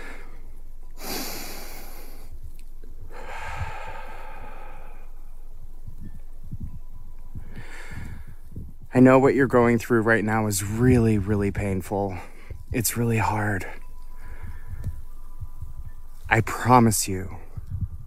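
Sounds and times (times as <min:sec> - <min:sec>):
person breathing deeply and slowly: 0:00.0 - 0:02.4, 0:03.0 - 0:05.6, 0:07.4 - 0:08.6, 0:14.1 - 0:15.1
speech: 0:08.9 - 0:13.8, 0:16.4 - 0:17.4.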